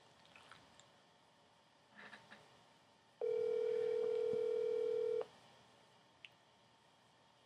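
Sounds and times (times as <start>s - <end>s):
phone line ringing with a steady electronic tone: 3.2s - 5.3s.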